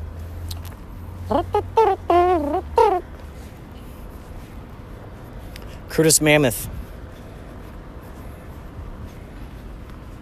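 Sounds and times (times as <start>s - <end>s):
speech: 1.3s - 2.0s, 6.0s - 6.8s
man's voice imitating an elephant trumpeting: 1.3s - 3.0s.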